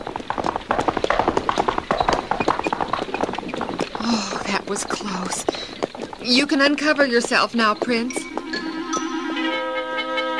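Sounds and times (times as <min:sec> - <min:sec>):
several horses' hooves clip-clopping while trotting: 0:00.0 - 0:10.3
speech: 0:04.7 - 0:08.2.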